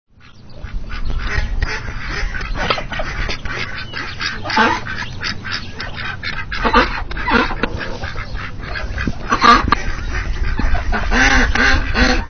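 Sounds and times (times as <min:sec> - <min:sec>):
ducks: 0:00.1 - 0:12.2.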